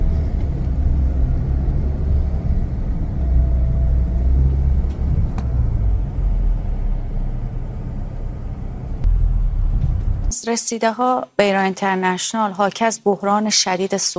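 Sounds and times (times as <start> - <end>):
several car engines idling in a long fuel queue at a petrol station: 0.0 - 10.3
speech: 10.5 - 14.1.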